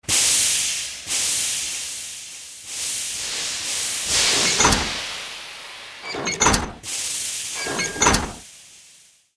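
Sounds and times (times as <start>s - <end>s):
steam walker machine idling: 1.1s - 8.4s.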